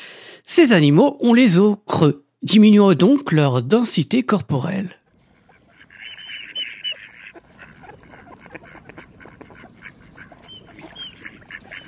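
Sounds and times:
speech: 0.6 - 5.0
mallard duck quacking: 5.2 - 11.8.

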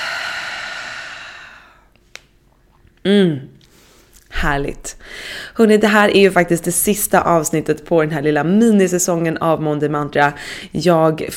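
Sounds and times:
slow exhale through the mouth during a relaxation breathing exercise: 0.0 - 1.9
speech: 3.0 - 3.5, 4.4 - 11.3.

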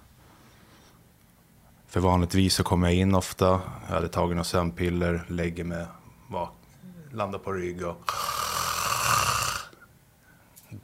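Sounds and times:
speech: 1.9 - 8.2
person imitating a snore with a raspy rattling breath: 8.0 - 9.8.

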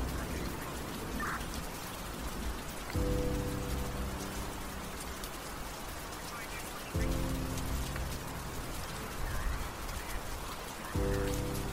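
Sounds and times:
steady dense rain hissing: 0.0 - 11.7.

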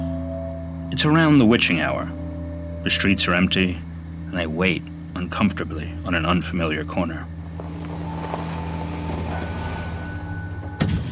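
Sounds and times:
speech: 0.9 - 2.2, 2.8 - 7.4
low rumble: 7.3 - 11.1
car power window rolling down on an empty street on a cold, wet night: 7.4 - 11.1.

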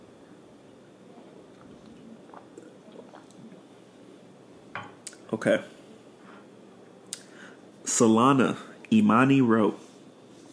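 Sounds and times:
low steady hiss: 0.0 - 10.5
person drinking water with soft wet gulping: 1.3 - 4.1
speech: 5.3 - 5.8, 8.0 - 9.8.

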